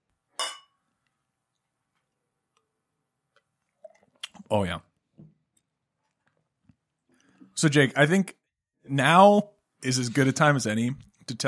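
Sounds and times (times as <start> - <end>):
beer glasses clinking together in a toast: 0.4 - 0.8
speech: 4.5 - 4.9, 7.6 - 11.4.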